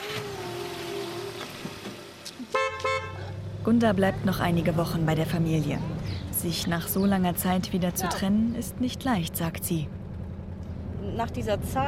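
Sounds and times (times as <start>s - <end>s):
car engine humming as it drives off from a farmyard: 0.0s - 11.8s
loud car horn honks: 2.4s - 3.4s
speech: 3.6s - 10.0s, 11.2s - 11.8s.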